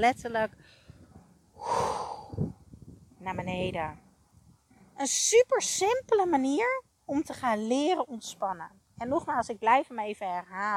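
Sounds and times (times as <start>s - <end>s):
speech: 0.0s - 0.8s, 3.2s - 4.0s, 5.0s - 10.7s
deep exhale during a relaxation breathing exercise: 1.6s - 2.6s.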